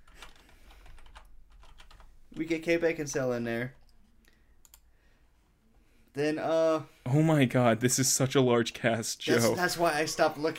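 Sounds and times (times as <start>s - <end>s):
typing on a computer keyboard: 0.1s - 2.1s
speech: 2.4s - 3.8s, 6.2s - 10.5s.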